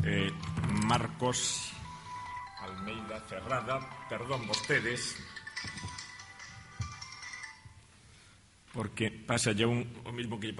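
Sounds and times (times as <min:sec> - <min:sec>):
speech: 0:00.0 - 0:01.8, 0:02.6 - 0:05.8, 0:08.8 - 0:10.5
mobile phone ringtone during a lecture course session: 0:01.8 - 0:07.8.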